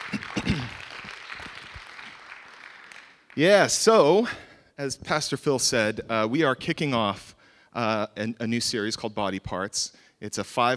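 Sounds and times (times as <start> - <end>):
audience applause of many hands clapping: 0.0 - 3.8
speech: 3.4 - 10.7.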